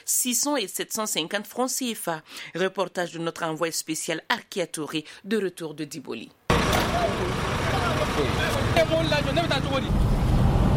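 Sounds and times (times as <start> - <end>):
speech: 0.0 - 6.4, 7.0 - 10.2
steady rumble of heavy vehicles and engines among parked trucks: 6.5 - 10.7.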